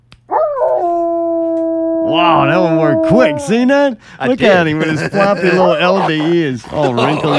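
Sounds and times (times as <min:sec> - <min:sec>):
person howling like a dog: 0:00.3 - 0:03.8
speech: 0:02.1 - 0:07.3
laughter: 0:02.6 - 0:07.3.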